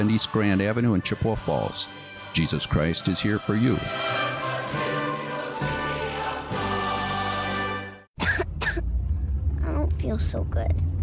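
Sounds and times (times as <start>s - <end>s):
speech: 0.0s - 4.2s, 10.2s - 10.9s
steady music: 0.0s - 8.1s
child coughing: 8.2s - 8.9s.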